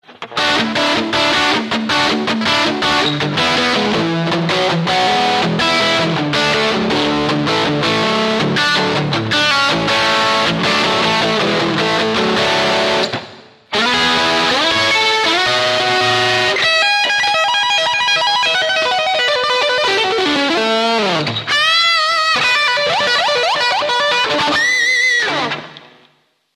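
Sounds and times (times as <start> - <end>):
hot harmonics: 0.0 - 26.0.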